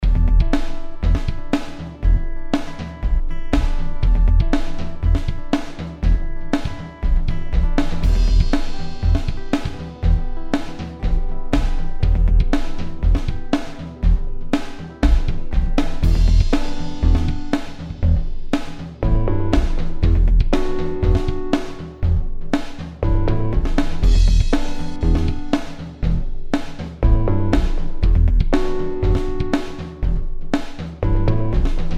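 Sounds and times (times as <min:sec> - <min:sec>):
music groove stem: 0:00.0 - 0:31.9.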